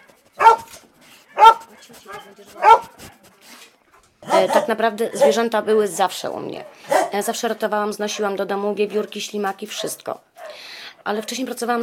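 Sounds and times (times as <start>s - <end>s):
two-year-old young dog barking: 0.4s - 0.7s, 1.3s - 3.0s, 4.2s - 5.5s, 6.6s - 7.2s, 9.7s - 10.6s
speech: 2.3s - 2.9s, 4.3s - 10.3s, 11.1s - 11.8s.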